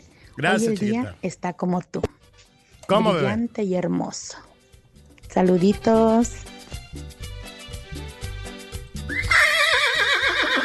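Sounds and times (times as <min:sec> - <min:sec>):
speech: 0:00.4 - 0:02.2, 0:02.9 - 0:04.5, 0:05.3 - 0:07.2
man imitating a horse whinny: 0:09.1 - 0:10.6.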